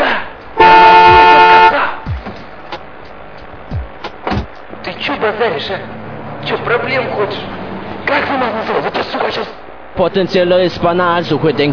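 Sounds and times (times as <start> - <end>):
autobahn traffic rumble: 0.0 - 11.7
car horn honking on a German autobahn: 0.6 - 1.9
speech: 5.2 - 11.7.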